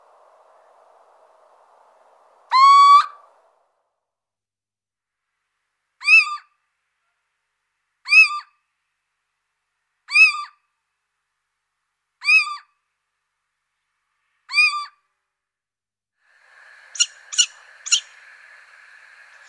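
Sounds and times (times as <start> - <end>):
little owl giving a rising whistle and sharp mewing notes: 2.5 - 3.2, 6.0 - 6.5, 8.1 - 8.5, 10.1 - 10.6, 12.2 - 12.7, 14.5 - 15.0, 16.9 - 18.2, 19.3 - 19.4.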